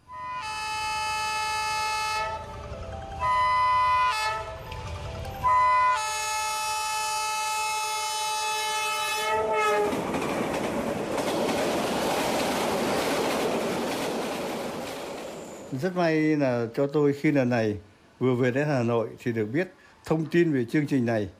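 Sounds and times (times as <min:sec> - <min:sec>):
train horn blasts: 0:00.0 - 0:02.6, 0:03.2 - 0:04.6, 0:05.4 - 0:10.0
passenger train rumbling and clattering along the rails: 0:00.0 - 0:21.2
speech: 0:15.8 - 0:21.3.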